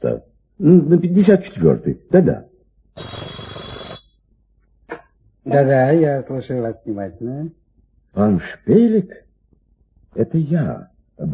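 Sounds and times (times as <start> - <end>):
speech: 0.1 - 3.2, 5.5 - 7.6, 8.2 - 9.2, 10.1 - 11.3
telephone bell ringing with a bright metallic rattle: 3.0 - 4.2.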